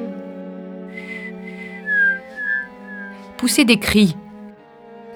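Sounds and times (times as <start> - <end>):
person whistling a short high note: 1.0 - 3.3
speech: 3.4 - 4.2.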